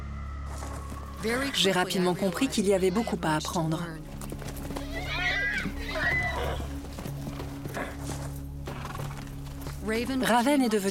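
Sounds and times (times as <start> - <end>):
wild horses' soft hoof clatter on a mountain summit in the Rocky Mountains: 0.6 - 10.8
speech: 1.2 - 4.1, 9.8 - 10.8
wild horse whinnying on a mountain summit: 4.8 - 6.8.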